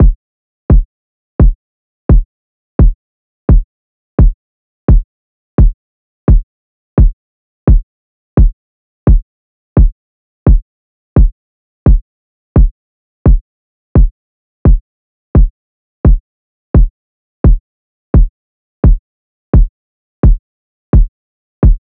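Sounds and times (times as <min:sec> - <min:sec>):
kick drum loop: 0:00.0 - 0:05.0, 0:05.6 - 0:06.4, 0:07.0 - 0:07.8, 0:08.4 - 0:09.2, 0:09.8 - 0:10.6, 0:11.2 - 0:12.0, 0:12.6 - 0:13.4, 0:15.4 - 0:16.2, 0:16.8 - 0:17.6, 0:18.2 - 0:21.8.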